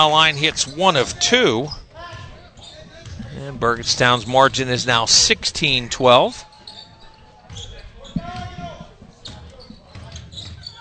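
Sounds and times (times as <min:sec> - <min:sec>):
speech: 0:00.0 - 0:01.8, 0:03.4 - 0:06.5
crowd noise: 0:00.0 - 0:10.7
basketball dribbled on the court during a game: 0:00.6 - 0:04.6, 0:06.6 - 0:10.7.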